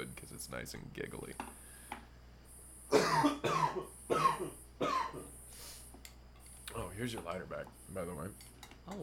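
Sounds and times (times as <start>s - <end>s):
speech: 0.4s - 1.6s, 7.0s - 9.0s
harsh raspy coughing after smoking: 2.9s - 5.3s.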